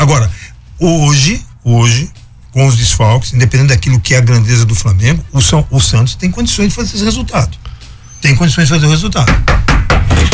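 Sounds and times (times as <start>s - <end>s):
speech: 0.1s - 10.3s
knocking on a wooden surface: 9.2s - 10.3s.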